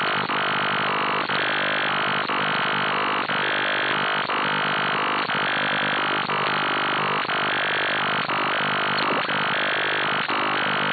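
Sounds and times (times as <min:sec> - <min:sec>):
QRN atmospheric static on 3673kHz AM radio via RTL-SDR and 80m dipole: 0:00.0 - 0:10.9
3673kHz AM radio signal received on RTL-SDR with 80m dipole: 0:08.3 - 0:09.6.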